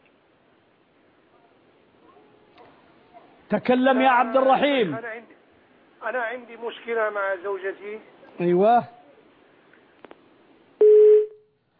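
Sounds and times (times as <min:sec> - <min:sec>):
speech: 0:03.5 - 0:05.4, 0:06.0 - 0:09.0
dropped phone call line tone: 0:10.8 - 0:11.4.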